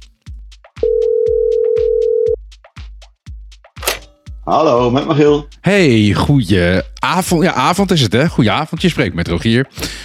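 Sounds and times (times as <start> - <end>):
regular thumping music beat: 0.0 - 10.0
telephone ringback tone while placing a call: 0.8 - 2.4
speech: 4.5 - 10.0.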